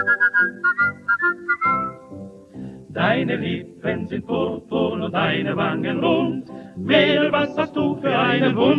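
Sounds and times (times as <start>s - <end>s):
person whistling a tune on an older German vocal-group recording: 0.0s - 2.1s
speech: 3.0s - 8.7s.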